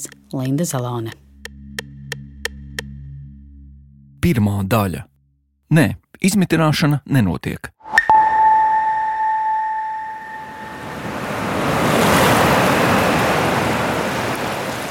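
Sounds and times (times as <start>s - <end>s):
speech: 0.0s - 1.3s, 4.2s - 5.1s, 5.7s - 7.8s
sustained electronic tone: 7.9s - 11.1s
sea waves rolling and breaking on the beach at Asari: 10.4s - 14.8s.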